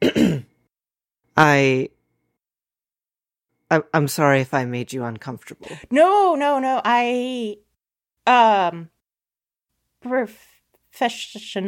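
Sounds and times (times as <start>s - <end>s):
man clearing his throat: 0.0s - 0.6s
speech: 1.4s - 2.0s, 3.7s - 7.6s, 8.2s - 8.9s, 10.0s - 11.6s.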